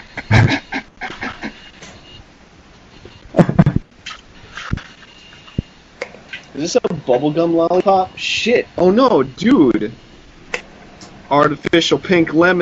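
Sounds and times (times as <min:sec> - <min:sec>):
dog making short yelps and whiny grunts: 0:00.3 - 0:01.6
speech: 0:06.6 - 0:10.1, 0:11.3 - 0:12.5.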